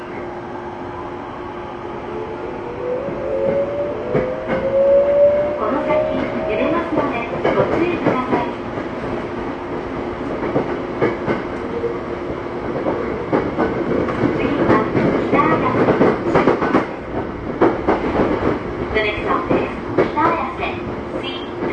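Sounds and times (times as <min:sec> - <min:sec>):
Tokyo Metro 05 series subway train rumbling between Ayase and Kita-Ayase: 0:00.0 - 0:21.7.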